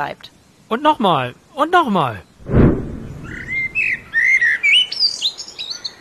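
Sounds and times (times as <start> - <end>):
speech: 0.0 - 2.3
Eurasian blackbird song: 3.1 - 5.9.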